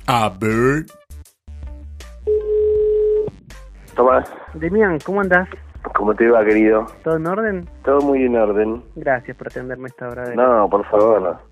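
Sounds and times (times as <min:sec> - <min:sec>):
speech: 0:00.1 - 0:01.0, 0:04.0 - 0:11.4
telephone dial tone: 0:02.3 - 0:03.3.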